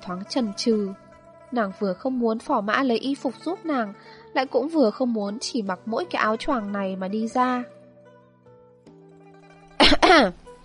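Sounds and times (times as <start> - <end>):
speech: 0.0 - 7.8, 10.1 - 10.4
light cough from behind a screen: 9.8 - 10.3.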